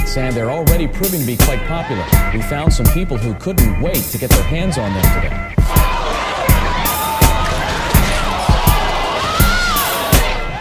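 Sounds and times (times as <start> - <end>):
speech: 0.2 - 5.8
crowd of shoppers with overlapping voices: 5.0 - 10.5
loud sharp bangs and thuds: 6.6 - 10.4.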